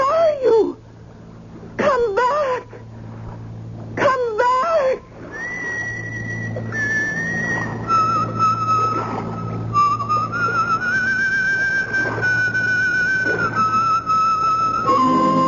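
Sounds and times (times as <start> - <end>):
low steady hum: 0.0 - 15.4
person whistling a slow wavering tune: 5.3 - 15.4.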